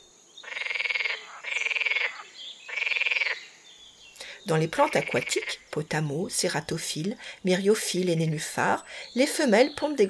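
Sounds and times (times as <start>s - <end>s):
green frog croaking: 0.4s - 3.6s, 4.2s - 6.7s
speech: 4.5s - 10.0s.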